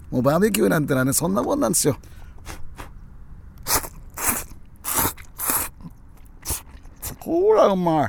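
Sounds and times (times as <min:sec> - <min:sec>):
speech: 0:00.1 - 0:02.6, 0:07.3 - 0:08.0
crisp crunchy bites: 0:03.7 - 0:05.7, 0:06.3 - 0:07.2
chewing and biting on soggy yakisoba fried noodles cooked at a barbecue: 0:03.7 - 0:07.3.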